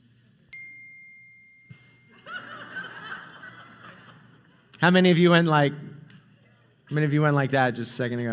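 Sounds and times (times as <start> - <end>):
cell phone notification ding during a church sermon: 0.6 - 2.2
room full of people laughing: 2.1 - 4.7
speech: 4.8 - 5.9, 6.9 - 8.3.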